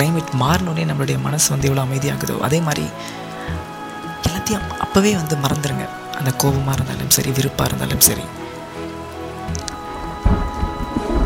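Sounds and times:
speech: 0.0 - 3.7, 4.4 - 8.4
steady rain pattering: 0.0 - 11.2
deep rumble: 9.6 - 11.2.

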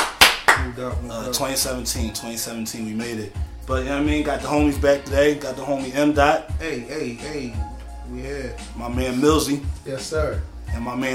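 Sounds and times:
hands clapping: 0.0 - 0.8
speech: 0.8 - 11.1.

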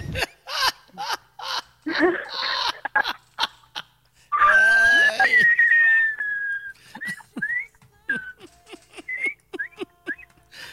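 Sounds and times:
laughter: 0.0 - 10.4
electric fan faint steady whir: 0.0 - 10.7
speech: 2.0 - 2.4
electric fan squeaking at top speed: 4.3 - 10.5.

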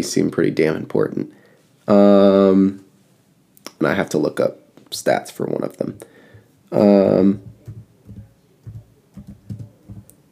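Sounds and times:
speech: 0.0 - 2.8, 3.8 - 6.1, 6.7 - 7.5
soft computer keyboard typing: 7.4 - 10.2.

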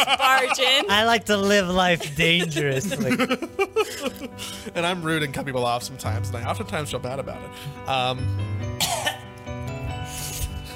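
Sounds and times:
laughter: 0.0 - 5.7
speech: 0.0 - 8.6
person coughing away from the microphone: 8.8 - 9.3.

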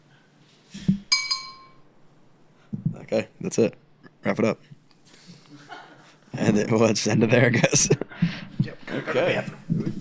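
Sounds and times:
glasses clinking together in a toast: 1.1 - 1.8
speech: 3.1 - 4.8, 6.4 - 8.0, 8.9 - 9.6.

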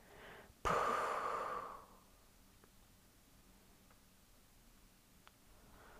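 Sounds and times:
slow exhale during breathing exercise: 0.0 - 2.0
soft inhale during breathing exercise: 0.0 - 2.1, 5.6 - 5.9.

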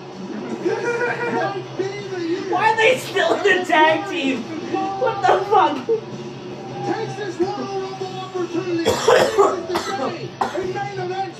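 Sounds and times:
murmur of voices: 0.0 - 11.3
laughter: 0.3 - 3.7
speech: 2.9 - 6.1
harsh coughs: 8.8 - 10.8.

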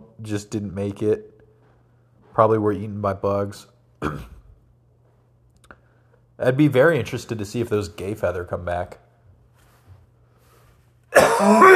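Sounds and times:
speech: 0.2 - 1.3, 2.4 - 4.3, 6.4 - 9.0, 11.4 - 11.7
single loud rough raspy cough turning into throat-clearing: 4.0 - 4.5, 11.1 - 11.7.

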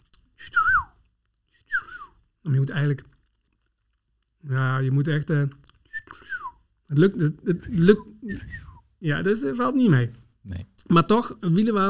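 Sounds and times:
whistled imitation of golden oriole call: 0.4 - 0.9, 1.6 - 2.1, 6.0 - 6.6, 8.3 - 8.8
speech: 2.4 - 3.2, 4.5 - 5.6, 6.9 - 11.8.

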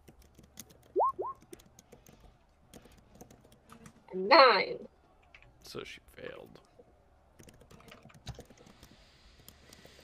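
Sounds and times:
typing on a computer keyboard: 0.0 - 3.7, 7.4 - 10.0
speech: 4.1 - 4.9, 5.7 - 6.6.

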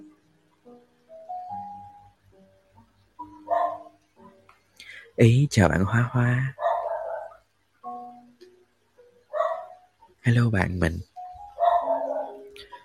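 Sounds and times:
dog barking: 3.5 - 4.0, 6.6 - 7.4, 9.3 - 9.8, 11.6 - 12.5
speech: 5.2 - 6.6, 10.3 - 11.1.

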